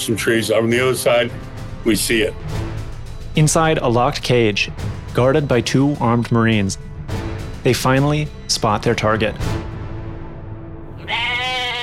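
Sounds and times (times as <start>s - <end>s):
speech: 0.0s - 2.6s, 3.4s - 6.9s, 7.6s - 9.6s
goat bleating in a locked cage: 11.0s - 11.8s.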